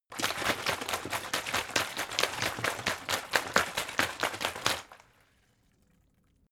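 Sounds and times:
big water bottle shaking: 0:00.0 - 0:05.1.

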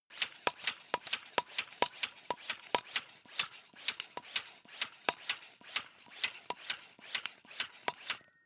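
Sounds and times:
small air pump: 0:00.0 - 0:08.3.

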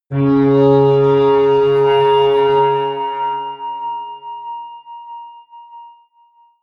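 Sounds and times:
low atmospheric feedback synthesizer drones: 0:00.1 - 0:03.8.

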